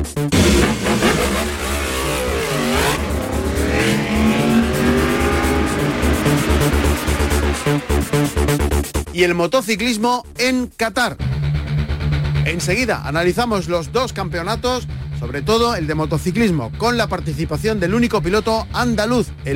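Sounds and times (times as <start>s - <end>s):
speech: 0.2s - 0.7s, 9.2s - 11.3s, 12.4s - 19.5s
Formula 1 race car engines roaring at the Bahrain Grand Prix: 0.3s - 9.0s.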